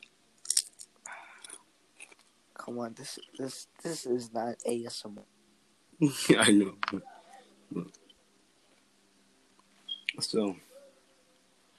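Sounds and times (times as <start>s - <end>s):
crunching chips while eating: 0.0s - 2.3s
speech: 2.6s - 5.4s, 6.0s - 7.1s, 7.7s - 8.0s, 10.3s - 10.7s.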